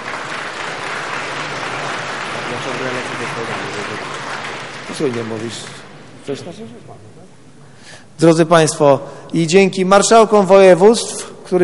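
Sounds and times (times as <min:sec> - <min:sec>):
audience applause: 0:00.0 - 0:06.3
speech: 0:02.6 - 0:04.2, 0:04.9 - 0:11.6.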